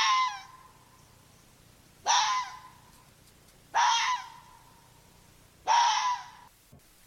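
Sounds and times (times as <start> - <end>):
red fox barking: 0.0 - 0.9, 2.0 - 2.9, 3.7 - 5.0, 5.6 - 6.5.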